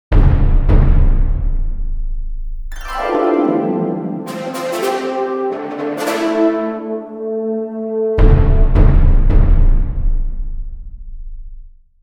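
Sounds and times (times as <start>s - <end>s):
drum in fanfare: 0.1s - 2.4s, 8.2s - 11.2s
harp in fanfare: 2.7s - 7.9s
trumpet fanfare: 2.8s - 8.8s.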